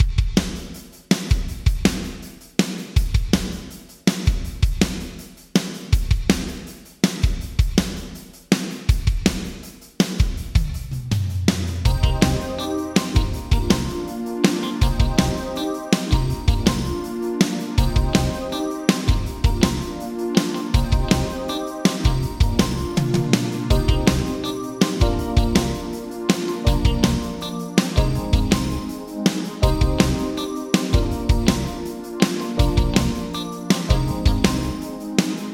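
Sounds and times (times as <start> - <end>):
drums with Yamaha Rev7 vocal plate reverb: 0.0 - 35.5.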